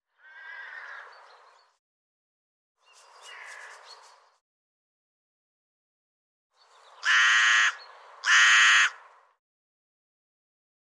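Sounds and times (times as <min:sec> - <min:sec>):
bird harsh raspy calls: 0:00.1 - 0:01.2, 0:07.0 - 0:09.0.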